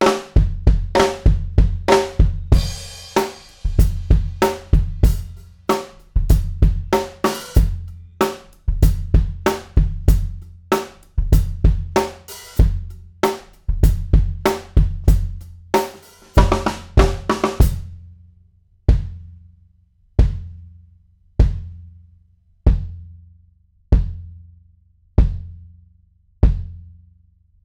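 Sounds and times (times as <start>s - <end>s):
kick drum figure-eight pattern: 0.0s - 5.4s, 6.2s - 7.9s, 8.7s - 10.4s, 11.2s - 12.9s, 13.7s - 15.4s, 16.4s - 17.9s, 18.9s - 19.2s, 20.2s - 20.5s, 21.4s - 21.8s, 22.7s - 23.0s, 23.9s - 24.3s, 25.2s - 25.5s, 26.4s - 26.8s.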